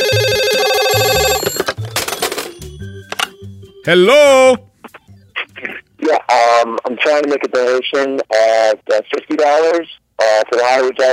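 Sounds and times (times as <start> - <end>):
telephone ringing with a bright electronic ringtone: 0.0 - 3.9
speech: 3.9 - 4.7, 6.1 - 11.1.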